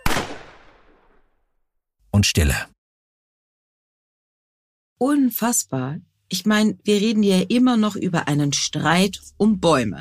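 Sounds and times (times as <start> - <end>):
loud gunshot with echo: 0.0 - 1.2
speech: 2.2 - 2.7, 5.0 - 10.0.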